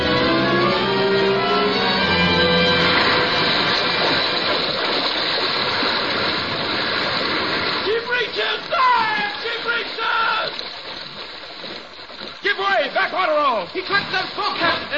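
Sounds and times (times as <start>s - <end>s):
sea water surging as a whale surfaces: 0.0s - 14.9s.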